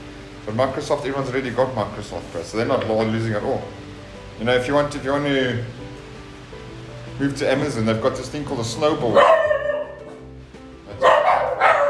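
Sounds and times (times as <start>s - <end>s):
speech: 0.5s - 3.8s, 4.4s - 5.8s, 7.2s - 9.4s
dog barking: 9.1s - 10.1s, 11.0s - 11.8s.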